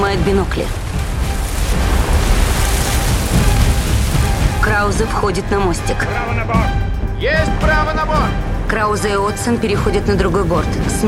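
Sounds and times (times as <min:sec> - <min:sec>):
depth charges exploding underwater: 0:00.0 - 0:05.7
speech: 0:00.1 - 0:00.8, 0:04.7 - 0:11.0.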